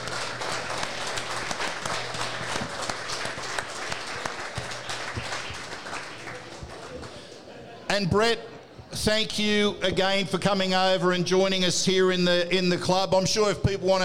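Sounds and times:
crowd at a club event applauding for a former player: 0.0 - 7.5
faint low hum: 0.0 - 13.8
speech: 8.0 - 14.0.

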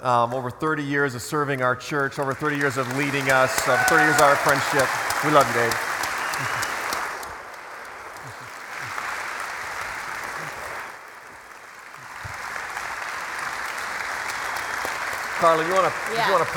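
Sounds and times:
speech: 0.0 - 6.7, 15.4 - 16.5
large crowd clapping and applauding: 1.9 - 16.5.

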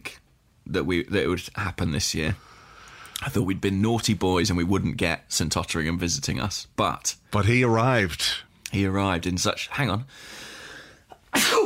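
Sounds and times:
speech: 0.7 - 2.6, 3.2 - 10.5
quiet intake of breath: 2.4 - 3.2, 10.1 - 11.2
person sneezing: 11.3 - 11.6.

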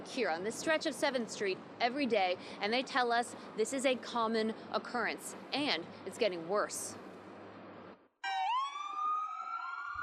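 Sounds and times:
speech: 0.0 - 7.0
street noise on 7th Street near Market: 0.0 - 10.0
emergency vehicle siren on city street: 8.2 - 10.0.

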